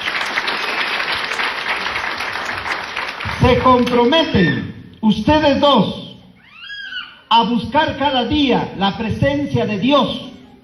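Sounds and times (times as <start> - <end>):
audience clapping hands: 0.0 - 4.1
speech: 3.4 - 6.0, 7.3 - 10.3.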